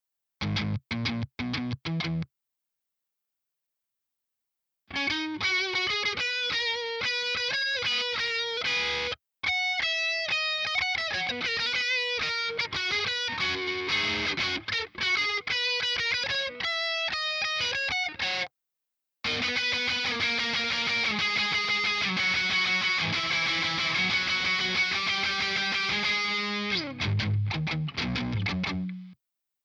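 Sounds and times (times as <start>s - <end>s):
crunchy electric guitar: 0.4s - 2.3s, 4.9s - 18.5s, 19.2s - 29.2s.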